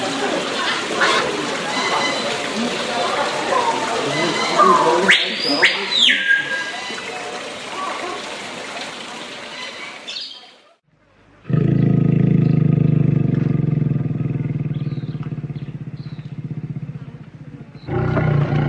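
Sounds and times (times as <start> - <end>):
murmur of voices at a zoo: 0.0 - 9.4
animal noises at a zoo: 0.4 - 7.1, 11.4 - 18.6
steady low engine-like rumble with a humming tone: 11.8 - 18.6.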